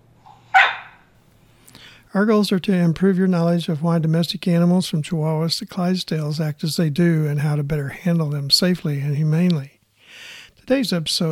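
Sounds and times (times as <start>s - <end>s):
low steady hum: 0.0s - 11.3s
cattle dog barking in central Missouri: 0.5s - 1.0s
speech: 2.1s - 9.8s, 10.7s - 11.3s.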